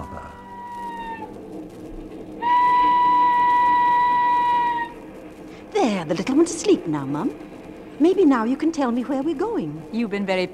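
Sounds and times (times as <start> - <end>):
steam train whistle on a passenger train in London: 0.0 - 1.3, 2.4 - 5.0
speech: 6.0 - 10.5.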